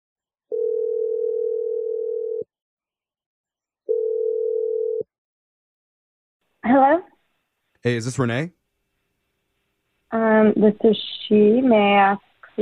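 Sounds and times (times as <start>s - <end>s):
long steady telephone tones of an outgoing call: 0.5s - 2.5s, 3.9s - 5.1s
speech: 7.8s - 8.6s, 10.1s - 12.5s.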